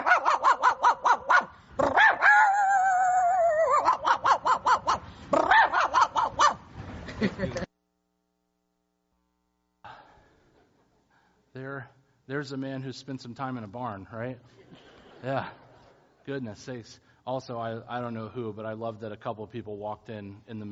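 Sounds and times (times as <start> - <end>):
person imitating dog barks and yelp: 0.0 - 6.6
laughter: 7.0 - 7.7, 14.5 - 16.2
speech: 11.8 - 15.6, 16.2 - 20.7.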